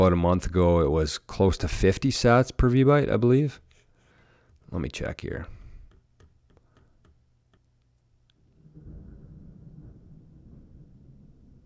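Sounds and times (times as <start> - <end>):
speech: 0.0 - 3.6, 4.7 - 5.6
distant thunder rumbling in a morning thunderstorm: 8.4 - 11.6.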